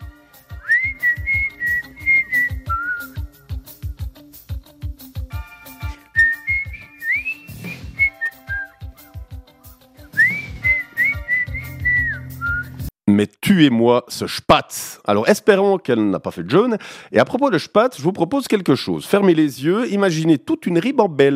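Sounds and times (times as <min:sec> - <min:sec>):
steady thumping musical beat: 0:00.5 - 0:12.9
woman whistling a tune: 0:00.6 - 0:03.2, 0:06.2 - 0:08.9, 0:10.0 - 0:12.8
speech: 0:13.6 - 0:21.3.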